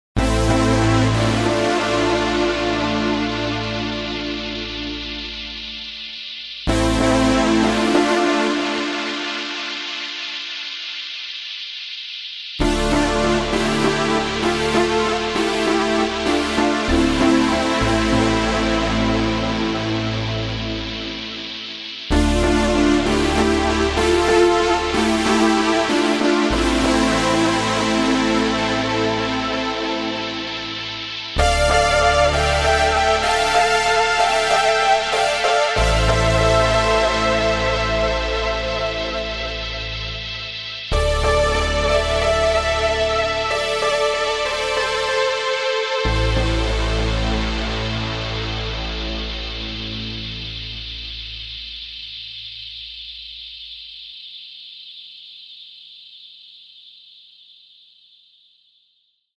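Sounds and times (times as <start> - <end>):
synthesized rain: 0.2 - 58.2.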